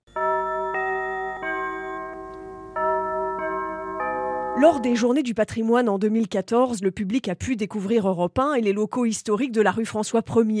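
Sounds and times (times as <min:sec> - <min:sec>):
radio station jingle chime played by a large music box: 0:00.1 - 0:05.1
speech: 0:04.6 - 0:10.5.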